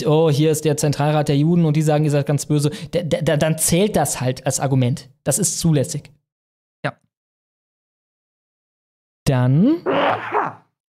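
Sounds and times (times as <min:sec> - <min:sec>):
speech: 0:00.0 - 0:06.2, 0:06.8 - 0:07.1, 0:09.3 - 0:10.6
person sneezing: 0:09.7 - 0:10.6.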